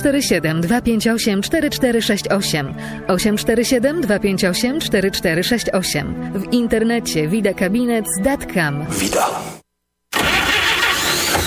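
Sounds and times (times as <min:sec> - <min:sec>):
speech: 0:00.0 - 0:09.6
old car engine starting: 0:10.1 - 0:11.4.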